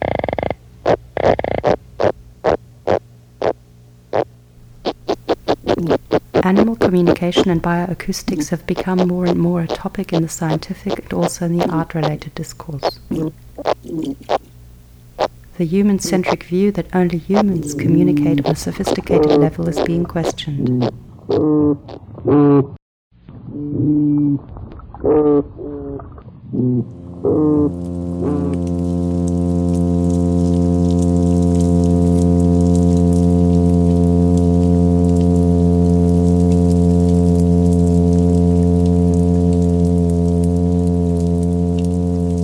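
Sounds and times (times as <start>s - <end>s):
fish low buzzy humming: 0.0s - 22.3s, 23.6s - 42.4s
faint hiss: 4.6s - 21.2s
brief voice-like sounds: 5.6s - 14.5s, 15.6s - 21.0s
speech: 6.5s - 14.4s, 15.6s - 22.7s.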